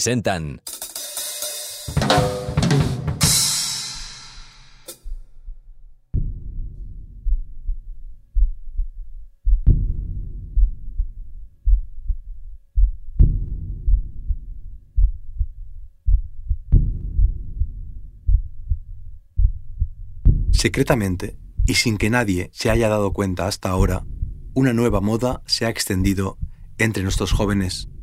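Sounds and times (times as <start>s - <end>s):
speech: 0.0s - 0.7s, 1.9s - 2.4s, 20.6s - 28.0s
slow deep human heartbeat: 5.0s - 23.0s, 23.8s - 28.0s.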